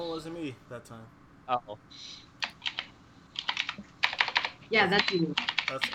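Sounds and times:
speech: 0.2 - 2.3, 4.7 - 5.9
rapid clacking keystrokes on a computer keyboard: 2.0 - 5.9.

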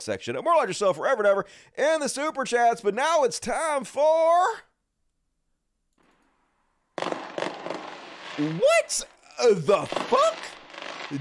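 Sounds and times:
speech: 0.0 - 4.7, 8.4 - 10.5
fireworks blast: 6.0 - 11.1.

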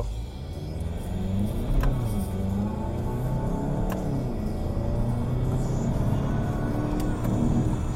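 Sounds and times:
car engine roar as DSG gearbox shifts gears: 0.0 - 7.9.

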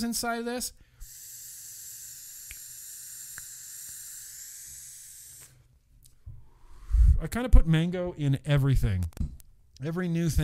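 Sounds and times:
speech: 0.0 - 0.8, 7.2 - 10.4
Type 2 e-cigarette coil on an Argus GT sizzling during a vape hit: 1.0 - 5.6.

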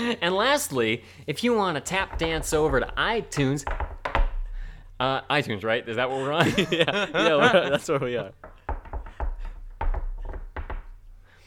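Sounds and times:
speech: 0.1 - 3.9, 5.0 - 8.5
woman knocking on a door: 1.9 - 4.7, 8.3 - 11.1
laughter: 6.1 - 8.4.

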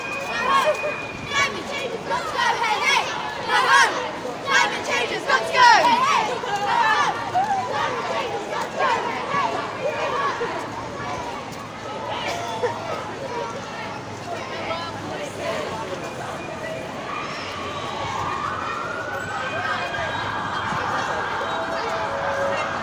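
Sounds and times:
crowd voices talking and calling outdoors at a youth climate strike: 0.0 - 22.8
siren: 17.7 - 22.8.

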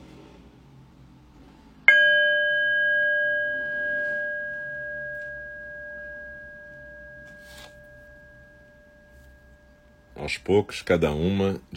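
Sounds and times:
meditation bell ringing: 1.9 - 11.4
speech: 10.3 - 11.7.

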